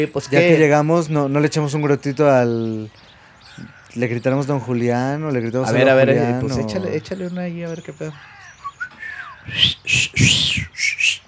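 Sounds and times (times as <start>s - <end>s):
speech: 0.0s - 3.0s, 3.6s - 8.4s, 9.5s - 10.4s
person whistling to call out to someone on arrival: 8.6s - 11.2s.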